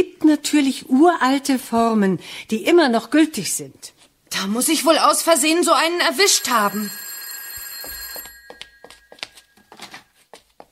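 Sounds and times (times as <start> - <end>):
speech: 0.0 - 7.0
telephone bell ringing with a bright metallic jangle: 5.8 - 10.0.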